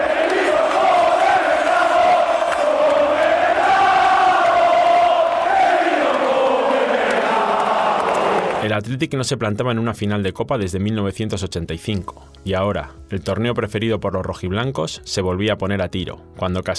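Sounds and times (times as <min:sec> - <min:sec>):
huge football stadium crowd singing a chant in unison: 0:00.0 - 0:08.6
speech: 0:08.9 - 0:16.7.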